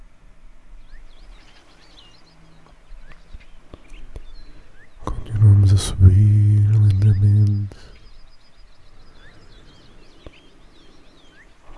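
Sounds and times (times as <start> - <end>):
soft steady hiss: 0.0 - 11.7
small birds chirping and twittering: 0.7 - 11.7
speech: 5.8 - 6.4.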